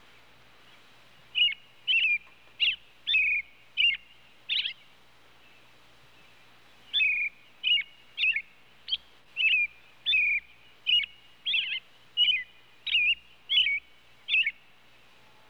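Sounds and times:
robin giving chirped call notes: 0:01.4 - 0:04.8, 0:06.9 - 0:14.6.

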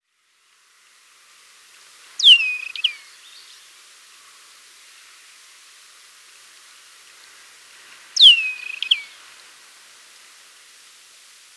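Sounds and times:
desert wheatear whistled song: 0:02.2 - 0:03.0, 0:08.2 - 0:09.1.

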